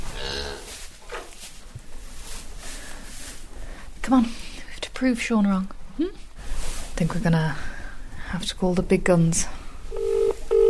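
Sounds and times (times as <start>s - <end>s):
steady rustling and shuffling in an echoey shed: 0.0s - 7.7s
dairy cow mooing in a shed: 0.2s - 0.6s
speech: 4.1s - 4.4s, 5.0s - 6.2s, 7.0s - 7.7s, 8.3s - 9.6s.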